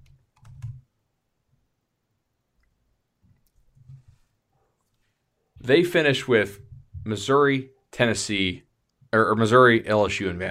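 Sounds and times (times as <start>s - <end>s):
computer keyboard typing: 0.0s - 0.9s
speech: 5.6s - 10.4s.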